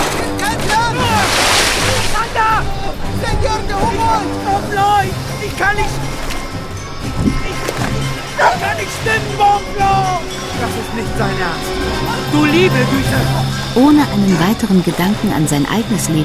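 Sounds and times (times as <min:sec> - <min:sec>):
stormy water of the Orinoco river crashing against an overloaded boat: 0:00.0 - 0:13.9
loud splashing: 0:00.0 - 0:14.0
water running into a rocking boat: 0:00.0 - 0:16.2
several voices shouting and calling out: 0:00.4 - 0:06.2, 0:07.4 - 0:13.5
speech: 0:12.4 - 0:16.2.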